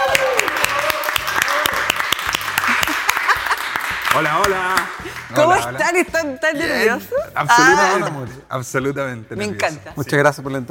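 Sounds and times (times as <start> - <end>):
audience applauding: 0.0 - 5.4
speech: 4.2 - 10.6.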